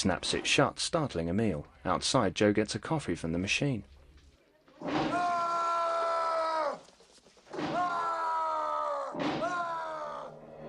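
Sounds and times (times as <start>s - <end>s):
speech: 0.0s - 4.0s
man screaming: 5.1s - 6.8s, 7.6s - 10.4s.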